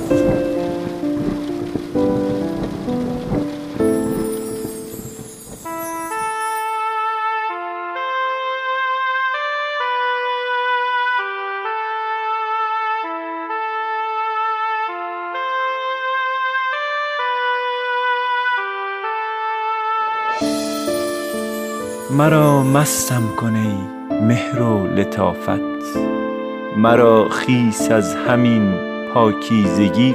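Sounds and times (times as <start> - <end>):
rain falling: 0.0 - 7.2, 20.3 - 30.1
gentle music with soft sustained tones: 0.0 - 30.1
speech: 22.2 - 26.2, 26.8 - 30.1.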